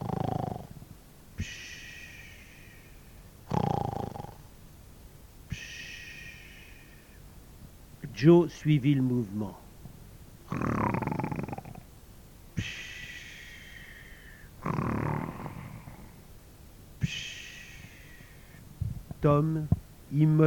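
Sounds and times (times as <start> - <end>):
sleeping person snoring with whistling breathy exhales: 0.0 - 0.8, 1.4 - 2.9, 3.5 - 4.5, 5.5 - 7.1, 10.5 - 11.8, 12.6 - 16.2, 17.0 - 18.6
speech: 8.2 - 9.6, 19.4 - 20.4.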